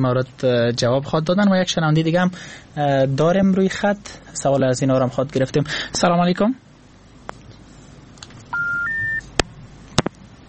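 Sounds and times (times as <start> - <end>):
speech: 0.0 - 6.6
phone-line disconnect tone on a call: 8.5 - 9.2.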